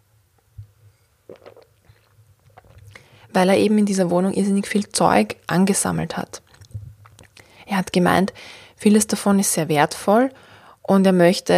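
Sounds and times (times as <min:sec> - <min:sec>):
person sipping a drink and swallowing: 0:00.6 - 0:03.3, 0:06.5 - 0:07.5
speech: 0:03.4 - 0:06.4, 0:07.8 - 0:11.5.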